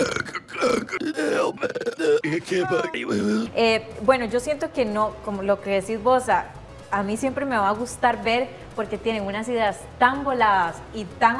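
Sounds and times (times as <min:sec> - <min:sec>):
person voicing a long imitation burp: 0:00.0 - 0:03.6
speech: 0:02.3 - 0:11.3.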